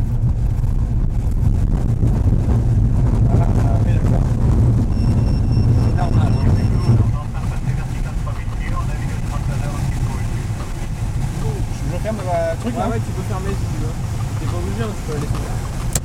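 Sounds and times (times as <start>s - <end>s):
tow plane engine droning rolling for takeoff on a runway pulling a glider: 0.0s - 16.0s
wind buffeting: 0.0s - 16.0s.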